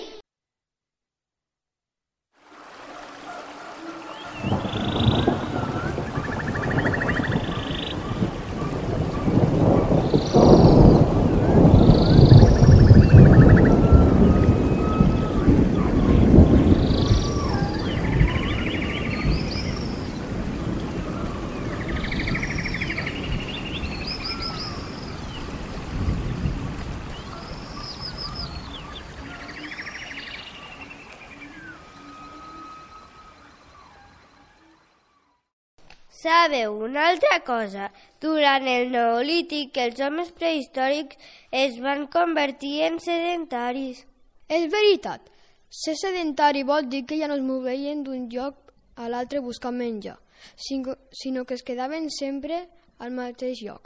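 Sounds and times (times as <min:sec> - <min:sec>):
wind blowing through tree branches: 0:02.3 - 0:53.8
birds chirping and trilling: 0:02.9 - 0:35.4
thunder rumbling: 0:04.0 - 0:33.9
speech: 0:36.2 - 0:53.8.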